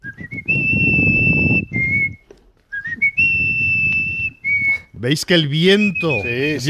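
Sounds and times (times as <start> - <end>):
person whistling a melody: 0.0 - 5.0, 5.8 - 6.6
speech: 5.0 - 6.6.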